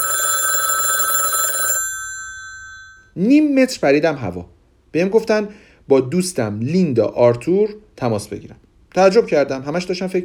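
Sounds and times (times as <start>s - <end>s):
telephone bell ringing: 0.0s - 3.1s
speech: 3.2s - 10.2s.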